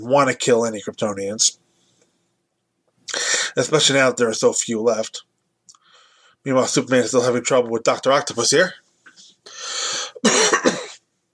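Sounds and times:
speech: 0:00.0 - 0:01.6, 0:03.1 - 0:05.3, 0:06.4 - 0:08.8
person coughing with raspy hacks: 0:09.9 - 0:11.0.

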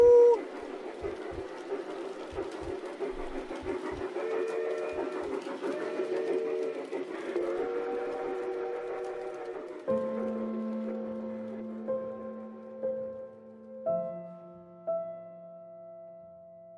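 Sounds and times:
train whistle tooting: 0:00.0 - 0:00.4, 0:04.2 - 0:09.9
rolling train rumbling: 0:00.0 - 0:14.4.

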